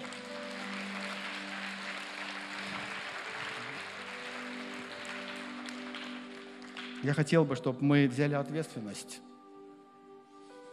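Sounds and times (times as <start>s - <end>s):
audience applauding: 0.0s - 7.3s
speech: 7.0s - 9.3s.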